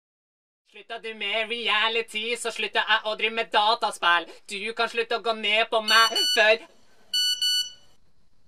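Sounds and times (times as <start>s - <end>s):
speech: 0.7s - 6.8s
message notification tone on a phone: 7.2s - 7.8s.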